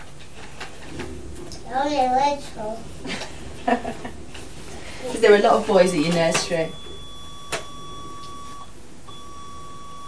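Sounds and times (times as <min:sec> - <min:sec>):
speech: 0:01.7 - 0:04.1, 0:05.0 - 0:06.8
laughter: 0:03.0 - 0:04.4
electronic toy high-pitched beeping tone: 0:06.7 - 0:10.0.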